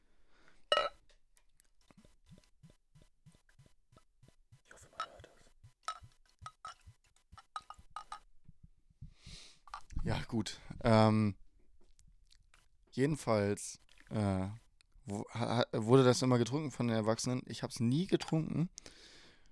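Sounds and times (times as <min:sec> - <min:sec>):
glass clink: 0:00.7 - 0:01.0
speech: 0:10.1 - 0:11.4, 0:13.0 - 0:19.1.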